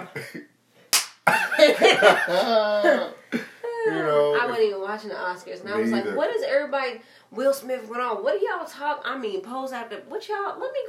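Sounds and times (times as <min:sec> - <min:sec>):
speech: 0:00.0 - 0:00.5, 0:01.6 - 0:03.4, 0:04.6 - 0:10.8
face slap sound effect: 0:00.9 - 0:01.3
laughter: 0:01.3 - 0:03.9.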